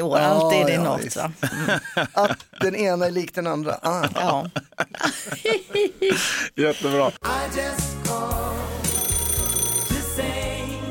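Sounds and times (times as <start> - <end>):
speech: 0.0 - 8.4
laughter: 1.3 - 2.9, 3.8 - 6.4
telephone ringing with a bright trilling bell tone: 8.8 - 10.3.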